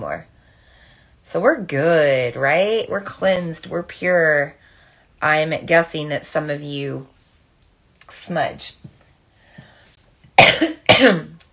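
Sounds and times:
speech: 0:00.0 - 0:00.4, 0:01.2 - 0:04.6, 0:05.2 - 0:07.1, 0:08.1 - 0:08.9, 0:10.6 - 0:11.3
person clearing throat: 0:10.4 - 0:11.4.

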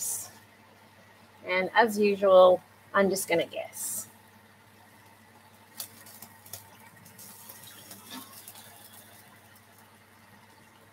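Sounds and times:
speech: 0:01.4 - 0:04.0
liquid stock pouring into a pot for a soup or stew: 0:05.6 - 0:10.9.

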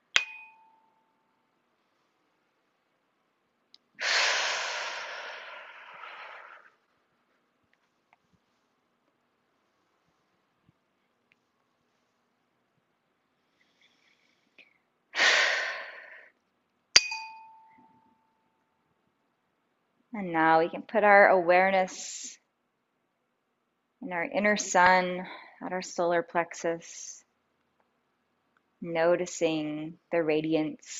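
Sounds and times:
soft bell-like ding: 0:00.2 - 0:01.2, 0:17.0 - 0:18.5
slow deep breathing, inhaling and exhaling: 0:04.0 - 0:06.8, 0:13.4 - 0:16.3
speech: 0:20.1 - 0:22.4, 0:24.0 - 0:27.2, 0:28.8 - 0:30.9.

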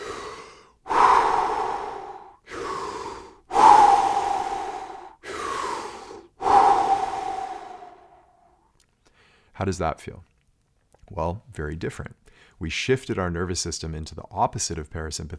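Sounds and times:
deep strong energized breaths in and out through the mouth: 0:00.0 - 0:09.5
speech: 0:09.6 - 0:10.3, 0:11.1 - 0:15.3.

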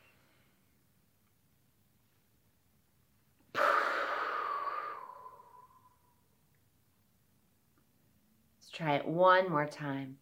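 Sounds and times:
deep breath in through the nose during a breathing exercise: 0:03.6 - 0:05.9
speech: 0:08.7 - 0:10.2.

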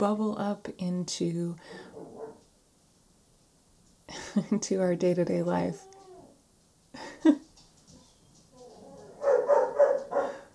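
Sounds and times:
speech: 0:00.0 - 0:01.9, 0:04.1 - 0:05.9, 0:07.0 - 0:07.5
young puppy barking and yipping: 0:02.0 - 0:02.4, 0:08.6 - 0:10.5.

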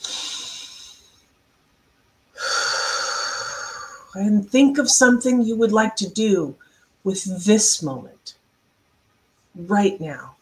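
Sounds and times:
slow deep human breath: 0:00.0 - 0:01.3, 0:02.4 - 0:04.2
speech: 0:04.2 - 0:08.4, 0:09.6 - 0:10.3.

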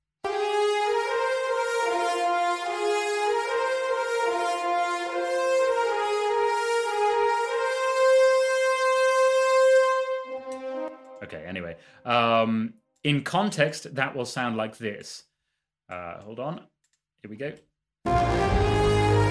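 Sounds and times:
six French horns playing a heroic melody in unison: 0:00.2 - 0:11.4, 0:18.1 - 0:19.3
speech: 0:12.1 - 0:15.3, 0:15.9 - 0:18.6.

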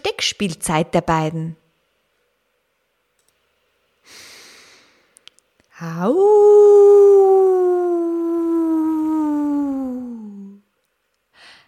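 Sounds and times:
speech: 0:00.1 - 0:01.6, 0:05.8 - 0:08.1
short breathy puff: 0:04.1 - 0:05.1
long tonal howl: 0:05.8 - 0:10.6.

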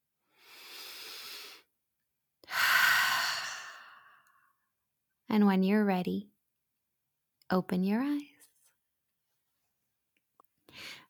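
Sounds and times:
deep breath in through the nose and out through the mouth: 0:00.3 - 0:01.7, 0:02.4 - 0:04.5
speech: 0:05.3 - 0:06.3, 0:07.5 - 0:08.3.

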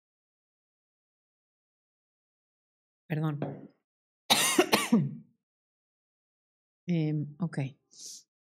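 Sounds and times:
speech: 0:03.1 - 0:03.8, 0:04.9 - 0:05.2, 0:06.9 - 0:08.2
harsh rasping coughs: 0:04.3 - 0:05.2.

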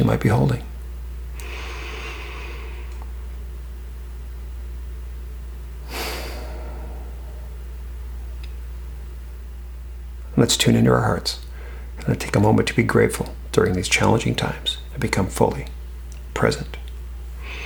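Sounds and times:
speech: 0:00.0 - 0:00.7, 0:10.4 - 0:15.8, 0:16.4 - 0:16.8
steady low hum: 0:00.0 - 0:17.6
slow calming breathing in a guided relaxation exercise: 0:01.3 - 0:03.4, 0:05.8 - 0:08.1, 0:11.5 - 0:12.0, 0:17.4 - 0:17.6.

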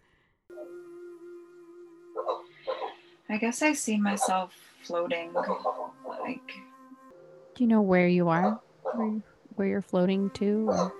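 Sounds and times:
dog howling and yelping: 0:02.2 - 0:03.0, 0:08.4 - 0:09.2, 0:10.7 - 0:10.9
speech: 0:03.3 - 0:06.7, 0:07.6 - 0:10.9.

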